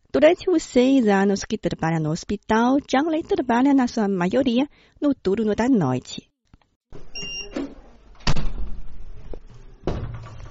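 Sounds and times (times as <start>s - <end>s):
speech: 0.2s - 6.3s
hospital ward door banging shut: 7.6s - 9.1s, 9.8s - 10.4s.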